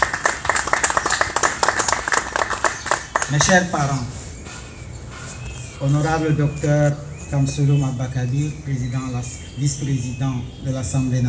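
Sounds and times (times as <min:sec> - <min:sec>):
crowd applauding: 0:00.0 - 0:03.8
speech: 0:03.3 - 0:04.2, 0:05.8 - 0:11.2.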